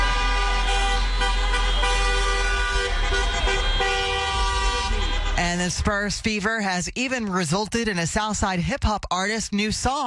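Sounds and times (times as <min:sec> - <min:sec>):
many car horns honking in celebration of a playoff victory: 0:00.0 - 0:05.8
low rumble of traffic: 0:00.0 - 0:10.0
speech: 0:05.5 - 0:10.0.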